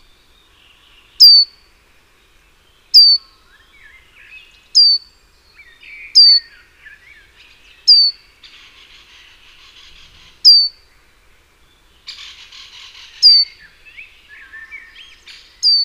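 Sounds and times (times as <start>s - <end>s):
quiet bird chatter: 0.0s - 15.8s
great tit Parus major giving piercing downward-swept call notes: 1.1s - 1.6s, 2.9s - 3.3s, 4.7s - 5.1s, 5.7s - 6.6s, 7.5s - 10.8s, 12.1s - 15.8s.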